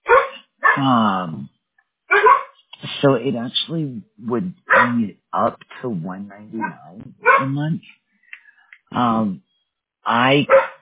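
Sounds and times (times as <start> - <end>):
dog barking and yelping: 0.0 - 0.8, 2.1 - 2.5, 4.7 - 4.9, 6.3 - 7.5, 10.5 - 10.7
speech: 0.8 - 1.5, 3.0 - 8.0, 8.9 - 10.7.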